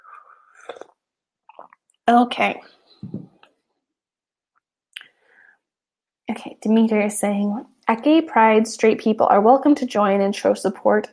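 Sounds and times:
loud slurp of a hot drink: 0:00.0 - 0:01.9
person sipping a hot drink: 0:00.0 - 0:02.0
small lip smacks: 0:00.5 - 0:01.9
speech: 0:02.1 - 0:03.2, 0:06.6 - 0:11.1.

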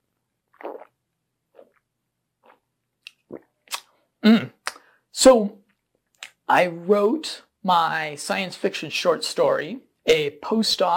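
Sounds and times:
sipping a drink: 0:00.5 - 0:04.8
speech: 0:04.2 - 0:04.5, 0:05.2 - 0:05.6, 0:06.5 - 0:10.9.

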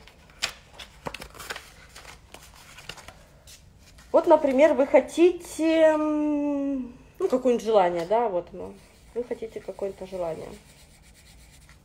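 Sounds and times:
sheet of paper rustling and crinkling: 0:00.0 - 0:04.9, 0:08.7 - 0:11.8
speech: 0:04.2 - 0:10.7.

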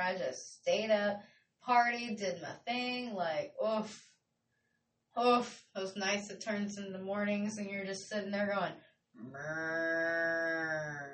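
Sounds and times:
speech: 0:00.0 - 0:04.1, 0:05.2 - 0:11.1
human voice imitating a cow mooing: 0:09.2 - 0:11.1.

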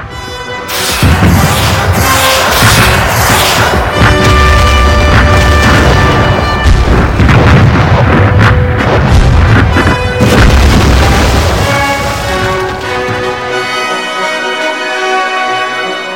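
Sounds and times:
sustained tonal music: 0:00.0 - 0:16.1
Soviet artillery barrage of cannon and rocket fire: 0:00.7 - 0:13.7
deep rumble: 0:00.8 - 0:13.5.

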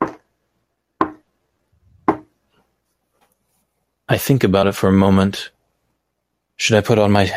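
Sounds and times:
sharp solid knocks: 0:00.0 - 0:00.3, 0:01.0 - 0:01.3, 0:02.0 - 0:02.3
speech: 0:04.1 - 0:05.6, 0:06.6 - 0:07.3.

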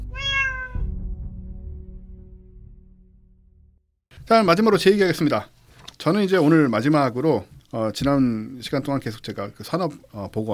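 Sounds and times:
cat meowing: 0:00.0 - 0:00.8
speech: 0:04.3 - 0:10.5.

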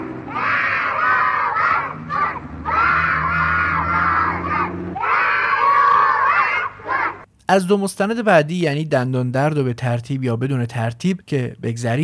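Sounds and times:
group of friends shouting loudly together: 0:00.0 - 0:07.3
speech: 0:07.5 - 0:12.0.

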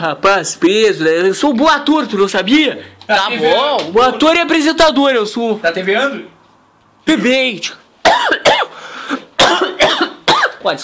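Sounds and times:
speech: 0:00.0 - 0:06.3, 0:07.0 - 0:08.6, 0:10.6 - 0:10.8
harsh wheezy coughs: 0:08.0 - 0:10.6.

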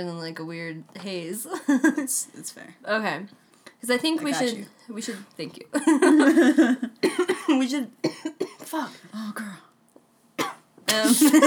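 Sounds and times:
speech: 0:00.0 - 0:09.7, 0:10.9 - 0:11.4
person coughing after taking a dab: 0:07.0 - 0:08.7, 0:10.4 - 0:11.4.

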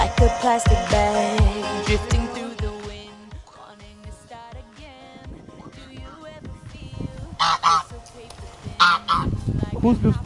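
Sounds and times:
speech: 0:00.2 - 0:02.3, 0:09.8 - 0:10.2
goose honking: 0:07.4 - 0:07.9, 0:08.8 - 0:09.3.

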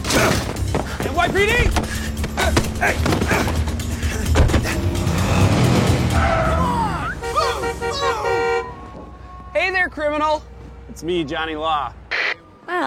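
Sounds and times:
car engines roaring in a car chase: 0:00.6 - 0:12.8
speech: 0:01.2 - 0:02.0, 0:02.8 - 0:03.5, 0:09.8 - 0:12.0, 0:12.7 - 0:12.8
car tires squealing: 0:04.6 - 0:09.8
several car horns honking together: 0:07.0 - 0:10.3.

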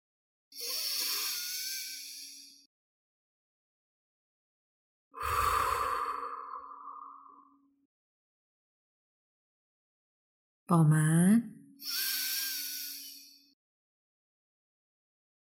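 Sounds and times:
deep breaths during a guided breathing exercise: 0:05.2 - 0:07.6
speech: 0:10.7 - 0:12.2.

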